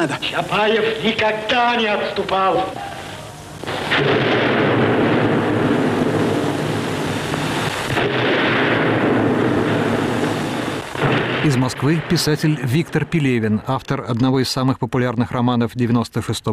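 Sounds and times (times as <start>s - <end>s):
speech: 0.0s - 2.9s, 11.4s - 16.5s
grenade explosion blowing up an armored car: 3.6s - 13.2s.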